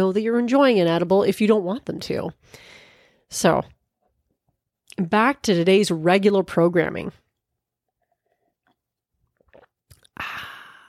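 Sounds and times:
speech: 0:00.0 - 0:03.8, 0:05.0 - 0:07.2
swallowing noises: 0:07.8 - 0:10.2
person drinking lemonade: 0:07.8 - 0:10.8.

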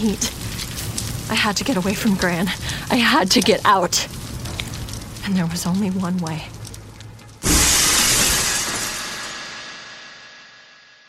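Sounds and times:
speech: 0:00.0 - 0:00.4, 0:01.3 - 0:04.2, 0:05.2 - 0:06.6
window glass shattering: 0:07.4 - 0:09.3.

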